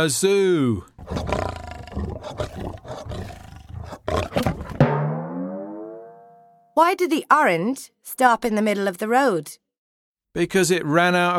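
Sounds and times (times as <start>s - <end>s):
speech: 0.0s - 1.4s, 2.0s - 3.4s, 6.8s - 9.6s, 10.3s - 11.3s
lion roaring: 1.0s - 4.9s.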